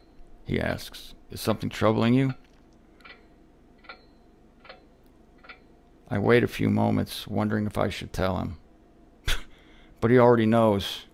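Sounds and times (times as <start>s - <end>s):
faint low room hum: 0.0s - 11.1s
speech: 0.5s - 2.4s, 6.1s - 8.6s, 10.0s - 11.1s
clock ticking: 3.0s - 5.7s.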